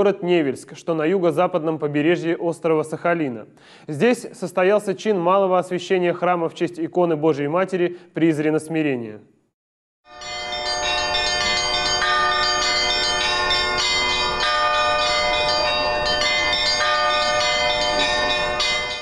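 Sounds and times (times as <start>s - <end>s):
speech: 0.0s - 9.4s
church bells pealing in Nevelsk on Sakhalin Island welcoming the Patriarch: 10.1s - 19.0s.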